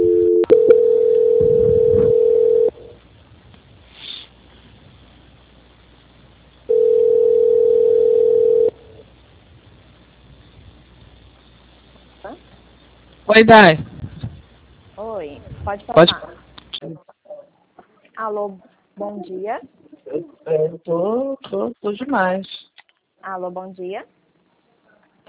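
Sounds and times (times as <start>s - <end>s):
telephone tones while a call is being transferred: 0.0s - 2.8s, 6.7s - 8.8s
quiet phone line hiss: 0.0s - 3.0s, 6.6s - 9.1s
speech: 13.4s - 13.9s, 15.7s - 17.0s, 18.2s - 22.6s, 23.2s - 24.2s.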